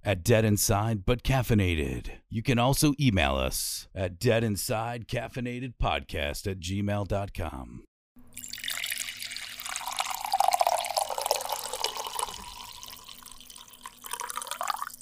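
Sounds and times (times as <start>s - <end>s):
speech: 0.0s - 8.6s
coffee poured into a cup: 8.4s - 15.0s.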